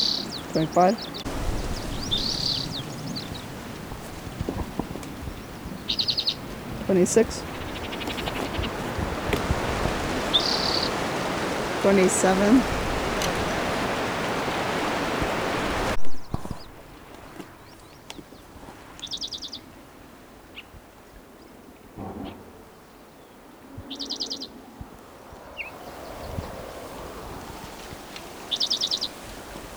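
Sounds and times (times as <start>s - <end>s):
bird chirping: 0.0s - 19.6s, 28.4s - 29.2s
hiss: 0.0s - 20.7s, 24.0s - 29.7s
speech: 0.5s - 1.3s, 6.9s - 7.5s, 11.8s - 12.8s.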